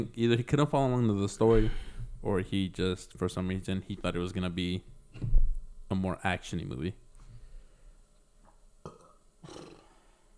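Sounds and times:
speech: 0.0 - 7.0
short gulping hiccup-like sounds: 8.8 - 9.9
loud burp: 8.8 - 10.0.

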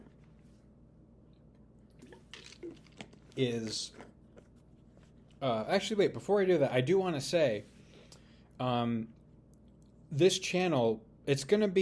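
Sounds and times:
low steady room hum: 0.0 - 11.8
person sipping water: 1.4 - 5.4
small gulp: 1.9 - 4.4
speech: 3.4 - 4.1, 5.4 - 7.7, 8.6 - 9.1, 10.1 - 11.8.

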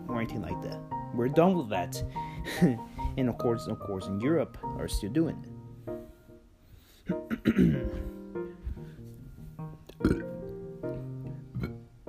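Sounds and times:
speech: 0.2 - 5.5, 7.6 - 8.0
long loud resonant burp: 7.3 - 7.9, 9.9 - 10.4, 11.5 - 11.8.

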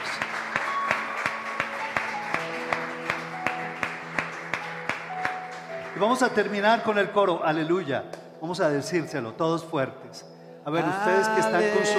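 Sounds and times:
audience applauding at a Spanish-language worship service: 0.0 - 7.3
speech: 6.0 - 11.9.

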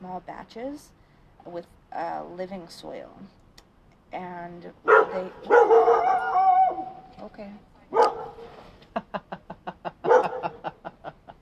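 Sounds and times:
speech: 0.0 - 3.4, 4.1 - 6.5, 7.2 - 9.1
dog barking: 4.8 - 7.0, 7.9 - 8.4, 10.0 - 10.6
dog whining: 4.9 - 7.1
laughter: 8.8 - 11.4.

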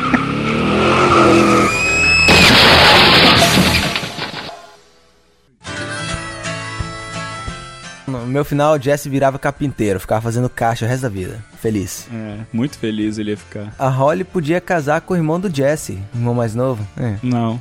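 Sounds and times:
racing car engine roaring and revving: 0.0 - 4.5
racing car tires screeching and skidding: 0.0 - 4.6
speech: 8.4 - 17.5.

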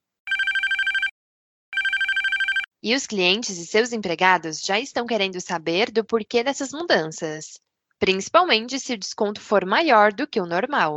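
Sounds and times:
office telephone ringing: 0.3 - 1.1, 1.8 - 2.7
speech: 2.8 - 10.9.

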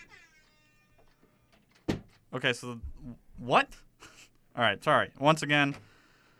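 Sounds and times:
laughter: 0.0 - 0.5
faint high whining tone: 0.0 - 1.7
door shutting with a single firm thud: 1.8 - 2.2
speech: 2.3 - 3.9, 4.6 - 5.9.

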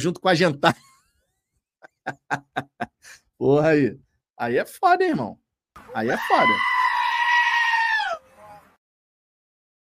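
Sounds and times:
speech: 0.0 - 0.9, 2.1 - 6.8
laughter: 0.6 - 0.9, 1.8 - 3.2
goat bleating: 5.9 - 8.6.

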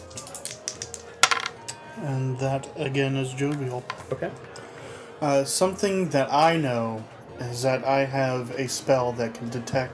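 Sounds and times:
dice clicking and rattling as they are passed: 0.0 - 1.7
speech: 2.0 - 4.6, 5.2 - 9.9.

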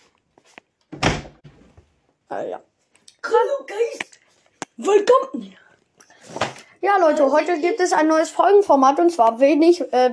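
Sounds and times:
door pushed shut with a solid thud: 0.9 - 1.8
speech: 2.3 - 4.2, 4.8 - 5.6, 6.8 - 10.1.

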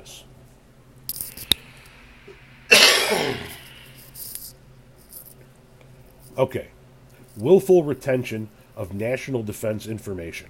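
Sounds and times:
loud harsh cough: 2.7 - 3.8
speech: 6.4 - 6.8, 7.4 - 10.4.

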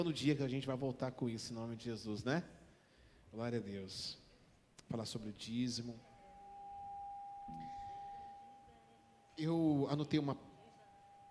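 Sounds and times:
speech: 0.0 - 2.6, 3.3 - 4.2, 4.9 - 6.1, 7.5 - 7.8, 9.4 - 10.5
low room hum: 4.6 - 11.2
high-pitched microphone feedback whine: 6.0 - 11.2.

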